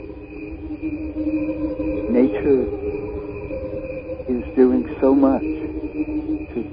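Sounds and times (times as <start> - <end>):
slowed-down cricket chirping droning hum: 0.0 - 6.7.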